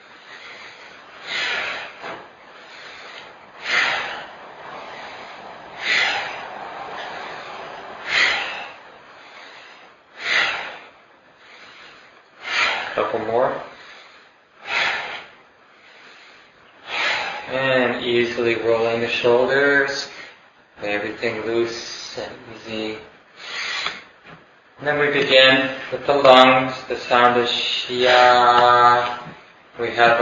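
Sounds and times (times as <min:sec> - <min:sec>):
slow deep breathing during a qigong breathing exercise: 0:00.0 - 0:18.0, 0:23.3 - 0:24.7
speech: 0:18.4 - 0:20.1, 0:20.9 - 0:23.2, 0:24.8 - 0:29.2, 0:29.8 - 0:30.2.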